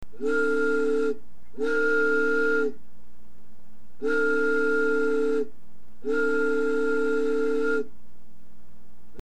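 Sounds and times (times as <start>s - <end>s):
large train: 0.2s - 2.8s, 4.0s - 8.0s.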